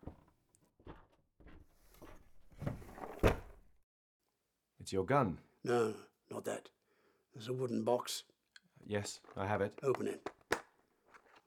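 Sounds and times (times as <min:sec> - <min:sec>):
top drawer of a wooden dresser being pulled open: 0:01.5 - 0:03.7
dresser drawer thump: 0:02.6 - 0:03.6
speech: 0:04.9 - 0:06.8, 0:07.4 - 0:10.3.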